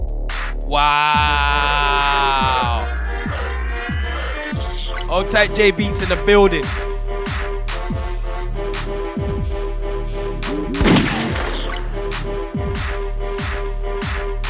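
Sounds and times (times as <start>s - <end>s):
hip-hop beat with booming kicks and synth tones: 0.0s - 8.2s, 8.8s - 14.4s
speech: 0.7s - 1.6s, 5.2s - 6.9s
gunshot sound effects: 10.8s - 12.0s.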